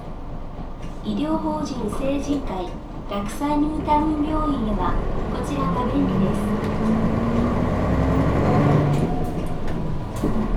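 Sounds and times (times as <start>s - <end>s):
city bus engine drone: 0.0s - 10.5s
speech: 1.0s - 7.3s
road noise of a moving city bus: 3.9s - 10.5s.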